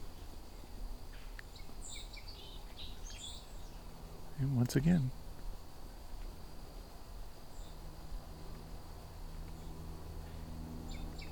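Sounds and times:
song sparrow singing: 0.0s - 4.0s, 7.5s - 7.9s, 9.5s - 11.3s
steady outdoor hiss: 0.0s - 10.8s
speech: 4.4s - 5.2s.

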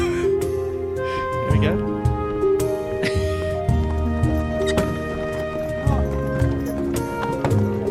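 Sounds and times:
continuous tonal musical backdrop: 0.0s - 7.8s
speech: 1.6s - 1.9s
horse-drawn cart hooves clip-clopping: 3.6s - 7.8s
horse-drawn cart rolling past: 3.8s - 7.8s.

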